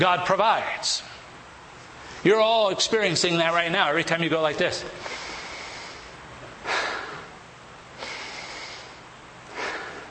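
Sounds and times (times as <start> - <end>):
speech: 0.0 - 1.1, 2.2 - 5.2
forceful deliberate breaths demonstrating breathing: 4.9 - 7.4, 8.0 - 10.0.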